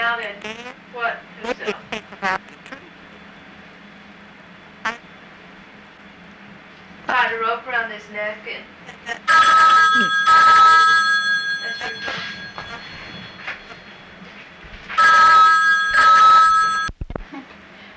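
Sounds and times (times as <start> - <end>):
people talking: 0.0 - 2.4, 7.1 - 11.0, 11.6 - 12.4
phone ringing with electronic trill: 9.2 - 14.1, 14.9 - 17.0.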